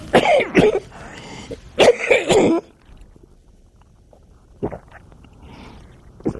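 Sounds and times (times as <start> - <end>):
harsh coughing: 0.1 - 0.9, 1.8 - 2.7.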